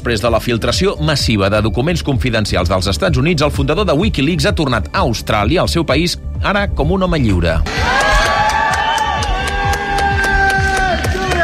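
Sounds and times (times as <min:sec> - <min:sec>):
speech: 0:00.0 - 0:08.1
crowd of family, supporters and media shouting and cheering at Canberra airport: 0:07.6 - 0:11.4
bursts of clapping at Canberra airport: 0:07.7 - 0:11.4
overlapping excited voices: 0:07.7 - 0:11.4.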